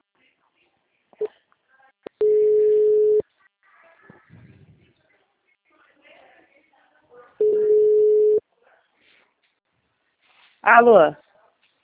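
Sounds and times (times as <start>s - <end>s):
people talking quietly: 0.0s - 9.7s
telephone line tone after a dropped call: 2.2s - 3.2s, 7.4s - 8.4s
speech: 10.7s - 11.2s.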